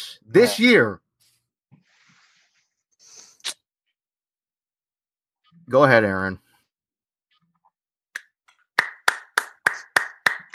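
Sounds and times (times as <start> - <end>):
speech: 0.2 - 1.0, 5.7 - 6.4
single person clapping hands: 8.2 - 10.5.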